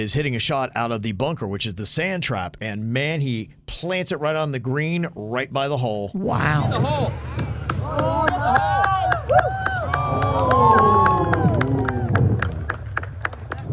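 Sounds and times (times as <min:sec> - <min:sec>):
speech: 0:00.0 - 0:08.7
golf gallery cheering at the 18th hole of a Pro-Am: 0:06.2 - 0:13.7
golf gallery clapping: 0:07.2 - 0:13.7.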